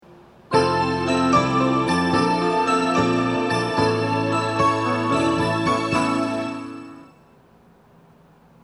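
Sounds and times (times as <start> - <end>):
station platform train departure melody: 0.5 - 7.4.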